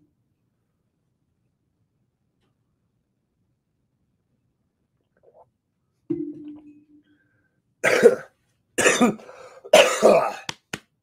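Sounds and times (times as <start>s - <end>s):
harsh coughing after coffee went down the wrong way: 7.8s - 10.5s.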